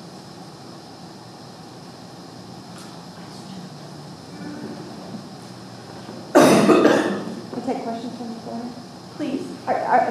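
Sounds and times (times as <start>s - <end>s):
person coughing harshly: 6.3s - 7.4s
speech: 7.9s - 10.0s.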